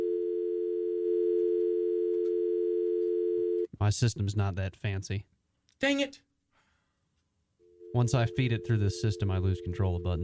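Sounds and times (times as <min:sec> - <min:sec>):
telephone dial tone before an outgoing call: 0:00.0 - 0:03.7
speech: 0:03.8 - 0:06.3, 0:07.9 - 0:10.2.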